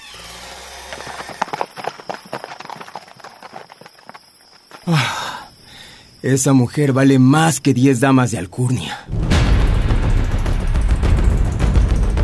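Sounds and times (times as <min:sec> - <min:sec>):
donkey hooves clip-clopping on hard ground: 0:00.4 - 0:04.9
speech: 0:04.9 - 0:05.2, 0:06.2 - 0:09.2
loud rough burst of sound: 0:09.1 - 0:12.2.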